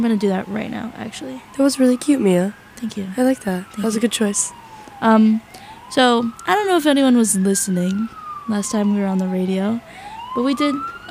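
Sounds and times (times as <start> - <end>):
police sirens passing outside: 0.0 - 11.0
speech: 0.0 - 11.0.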